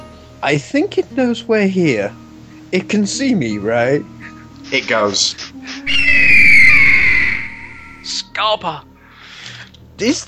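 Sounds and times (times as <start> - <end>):
speech: 0.4 - 5.8, 8.1 - 8.9, 10.0 - 10.2
person imitating a griffin's squawking screech: 5.9 - 8.1.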